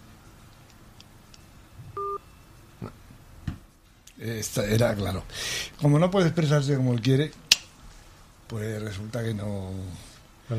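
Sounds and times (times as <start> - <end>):
electronic telephone ring signal on a line: 2.0 - 2.3
speech: 4.2 - 7.4, 8.5 - 10.5.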